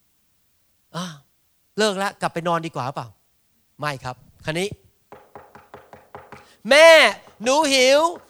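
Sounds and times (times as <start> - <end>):
speech: 1.8 - 3.2, 3.8 - 4.8, 6.6 - 8.2
child knocking on a bedroom door: 5.1 - 8.2.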